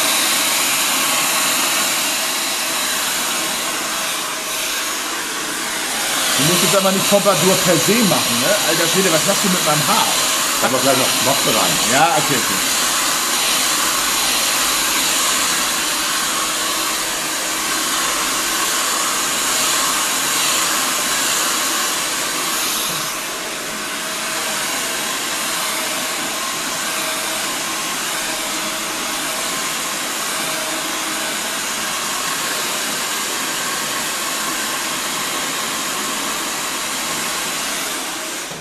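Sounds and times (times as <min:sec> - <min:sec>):
hair dryer blowing: 0:00.0 - 0:38.6
speech: 0:06.4 - 0:12.8.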